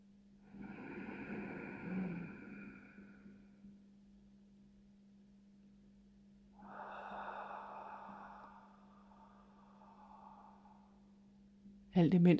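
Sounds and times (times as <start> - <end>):
deep breathing in a guided breathing exercise: 0.5 - 3.6, 6.6 - 11.5
steady low hum: 0.5 - 11.9.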